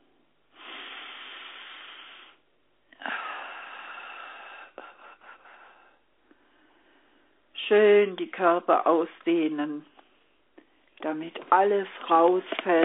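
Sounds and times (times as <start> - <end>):
deep breathing during a guided relaxation exercise: 0.5 - 2.4, 3.0 - 7.5
speech: 7.7 - 9.9, 11.0 - 12.8.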